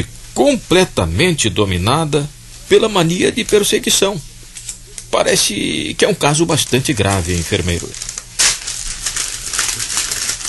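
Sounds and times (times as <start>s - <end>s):
speech: 0.0s - 4.3s, 5.1s - 8.1s
paper letter tearing: 6.4s - 10.4s.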